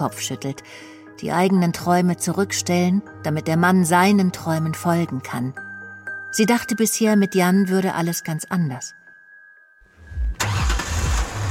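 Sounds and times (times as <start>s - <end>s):
speech: 0.0s - 5.6s, 6.3s - 9.0s
car engine cranking: 10.2s - 11.4s.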